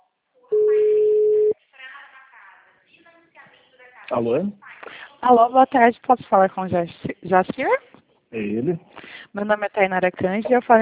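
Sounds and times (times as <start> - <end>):
telephone ringback tone of an outgoing call: 0.5 - 1.6
speech: 4.1 - 10.7.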